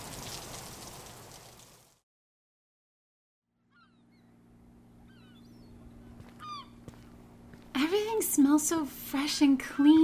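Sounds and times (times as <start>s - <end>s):
summer rain falling: 0.0s - 2.0s
birds chirping: 3.6s - 7.5s
low hum: 3.6s - 10.0s
speech: 7.8s - 10.0s.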